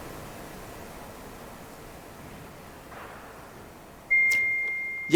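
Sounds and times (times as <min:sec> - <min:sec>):
phone notification beep: 0:04.1 - 0:05.1.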